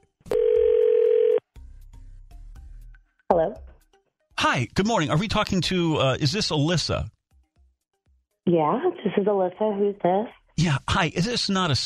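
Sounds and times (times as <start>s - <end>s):
telephone line dial tone: 0.3s - 1.4s
speech: 3.3s - 3.7s, 4.4s - 7.2s, 8.5s - 11.8s.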